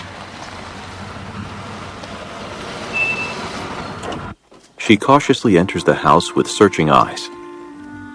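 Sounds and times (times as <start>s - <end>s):
car engine rumbling while pulling up into a driveway: 0.0s - 5.2s
short high-pitched beep: 3.0s - 3.4s
speech: 4.9s - 7.4s.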